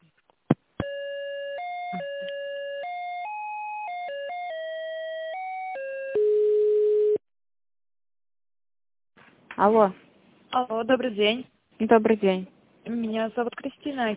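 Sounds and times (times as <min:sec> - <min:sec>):
phone electronic ringtone melody: 0:00.8 - 0:07.2
speech: 0:09.6 - 0:10.0, 0:10.6 - 0:14.1.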